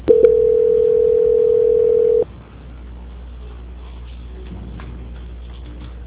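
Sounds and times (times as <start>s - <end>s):
steady single-pitched telephone tone during a call transfer: 0.0s - 2.3s.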